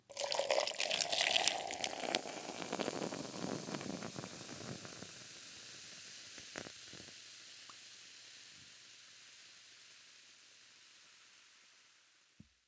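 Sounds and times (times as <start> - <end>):
liquid pouring: 0.0 - 4.2.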